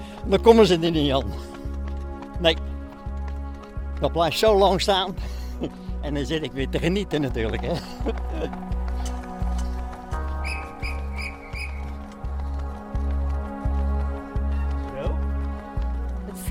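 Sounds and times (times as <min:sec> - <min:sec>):
rhythmic low thumping: 0:00.0 - 0:16.5
speech: 0:00.2 - 0:01.6, 0:02.4 - 0:02.7, 0:04.0 - 0:09.2
laughter: 0:07.5 - 0:08.7
trainer's whistle toots during training: 0:10.3 - 0:12.0.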